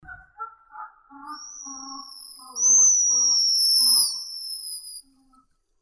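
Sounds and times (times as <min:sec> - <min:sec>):
pigeon guillemot Cepphus columba calling: 0:00.0 - 0:04.3.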